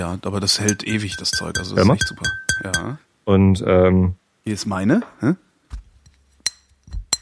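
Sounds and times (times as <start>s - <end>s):
speech: 0.0s - 5.4s
super-thin glass drinking vessels clinking together: 0.6s - 3.0s.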